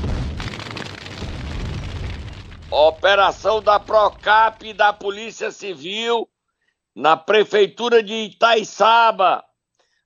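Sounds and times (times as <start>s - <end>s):
bomb explosion: 0.0s - 5.2s
speech: 2.7s - 6.3s, 7.0s - 9.5s.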